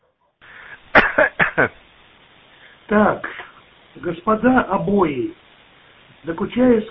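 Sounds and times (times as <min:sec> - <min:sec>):
low hiss: 0:00.4 - 0:06.8
caller coughing into the microphone over a telephone line: 0:00.9 - 0:01.7
speech: 0:01.6 - 0:01.8, 0:02.9 - 0:03.4, 0:04.0 - 0:05.4, 0:06.2 - 0:06.8.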